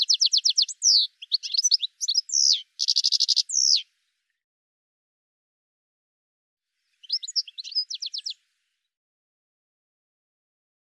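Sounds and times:
bird twittering: 0.0s - 3.8s, 7.0s - 8.4s.

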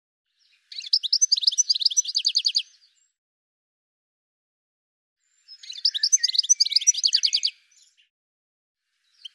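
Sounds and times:
bird giving quick high chattering chirps: 0.7s - 2.6s, 5.6s - 7.5s.

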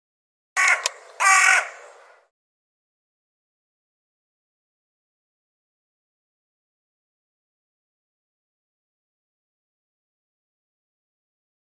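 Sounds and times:
bird hoarse grating calls: 0.6s - 2.3s.

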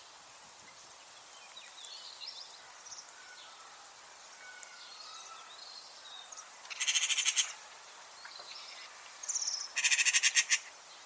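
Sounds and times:
bird calls in bright buzzy pulses: 6.7s - 7.6s, 9.8s - 10.7s.

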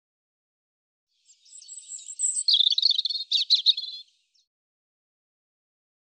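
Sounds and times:
European robin singing: 1.2s - 4.5s.

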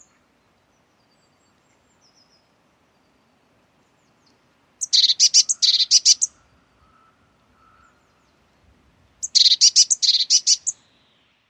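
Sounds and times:
Eurasian blue tit buzzy churring calls: 4.8s - 8.0s, 9.2s - 10.8s.

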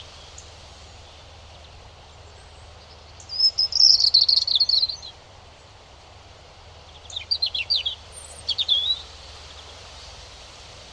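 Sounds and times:
European robin singing a rapid high warbling phrase: 0.4s - 5.2s, 6.9s - 9.8s.

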